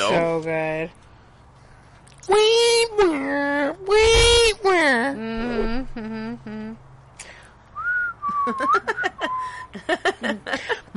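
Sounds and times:
speech: 0.0 - 1.1, 2.3 - 6.8, 8.4 - 10.9
person whistling a film tune: 7.8 - 9.7
laughter: 8.3 - 10.9.

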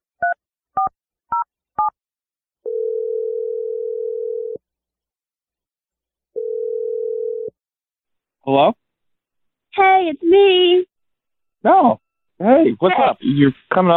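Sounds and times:
telephone ringback tones: 2.7 - 4.6, 6.4 - 7.5
speech: 8.5 - 8.8, 9.8 - 10.9, 11.6 - 13.9.

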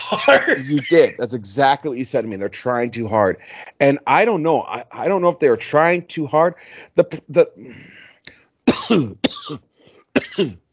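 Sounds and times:
person coughing harshly: 0.0 - 1.2, 8.7 - 9.6, 10.2 - 10.6
laughter: 0.0 - 1.7
speech: 0.1 - 8.0, 8.7 - 10.6.

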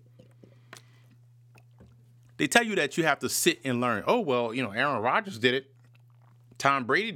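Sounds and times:
person swigging and swallowing bottled water: 0.0 - 2.4, 5.7 - 6.6
steady low electrical hum: 0.0 - 7.1
speech: 2.4 - 5.7, 6.6 - 7.1.

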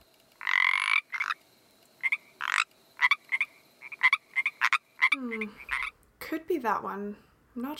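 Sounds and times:
Pacific tree frog croaking: 0.4 - 1.4, 2.0 - 6.0
speech: 5.2 - 5.7, 6.3 - 7.7.

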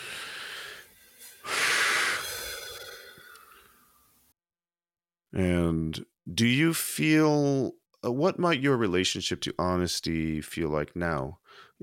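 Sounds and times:
deep breaths during a calming exercise: 0.0 - 4.0, 11.4 - 11.8
speech: 5.4 - 11.8.

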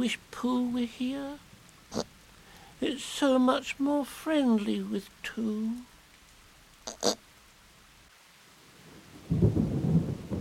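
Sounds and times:
speech: 0.0 - 2.1, 2.8 - 5.9, 6.9 - 7.2
loud steady wash of rain in a thunderstorm: 0.0 - 10.4
low rumbling thunder in a thunderstorm: 8.9 - 10.4
thunder cracks in a thunderstorm: 9.2 - 10.4.

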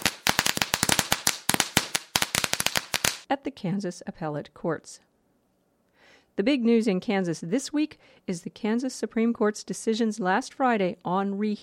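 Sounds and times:
firecracker-style fireworks crackling: 0.0 - 3.3
speech: 3.3 - 5.1, 6.4 - 11.6.

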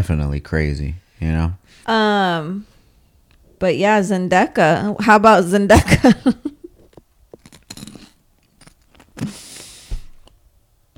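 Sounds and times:
speech: 0.0 - 2.7, 3.6 - 6.6
crunchy food being chewed: 7.4 - 9.2.

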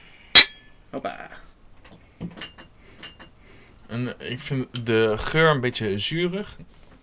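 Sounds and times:
glasses clinking in a toast: 0.4 - 0.7, 2.3 - 3.4
speech: 1.0 - 1.5, 3.9 - 6.8.

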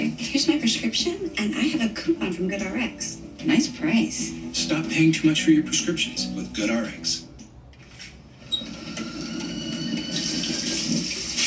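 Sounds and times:
speech: 0.4 - 7.3
faucet running into a sink: 10.1 - 11.4.

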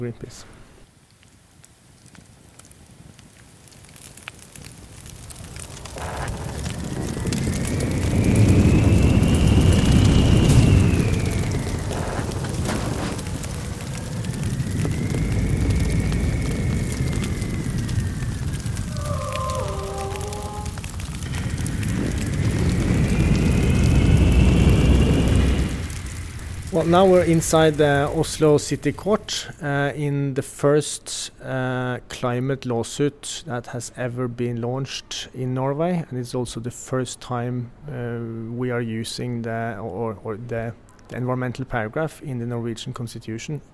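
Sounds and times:
speech: 0.0 - 0.6, 26.8 - 43.7
roaring wind rush from hang glider loops: 5.8 - 29.3.

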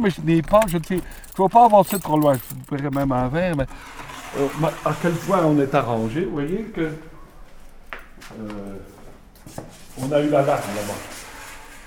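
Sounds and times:
speech: 0.0 - 7.1, 8.3 - 11.2
keys jingling while entering a buvette: 0.4 - 3.3, 4.1 - 4.9.

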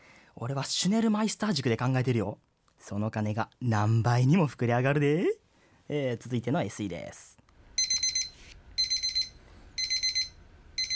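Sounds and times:
faint hum: 0.0 - 10.9
speech: 0.4 - 7.4
kitchen timer beeping: 7.8 - 10.9.

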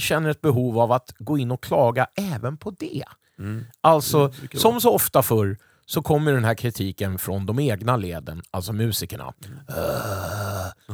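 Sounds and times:
speech: 0.0 - 10.9
frustrated low growling vocal groan: 3.4 - 3.8, 9.4 - 10.9.

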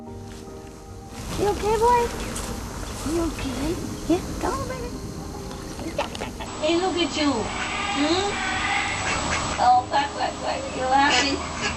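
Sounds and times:
speech: 1.4 - 2.3, 3.0 - 5.0, 5.9 - 8.6, 9.6 - 11.7
duck quacking: 7.2 - 9.8, 10.6 - 11.7.

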